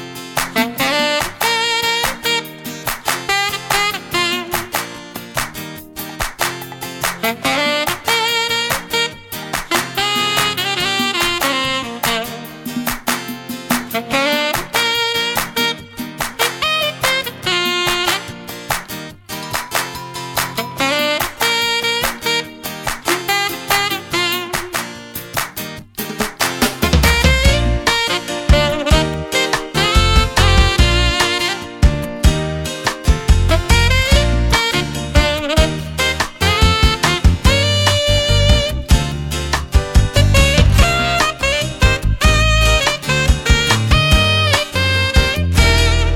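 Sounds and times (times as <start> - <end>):
saxophone playing: 0.3 - 25.1, 26.9 - 46.1.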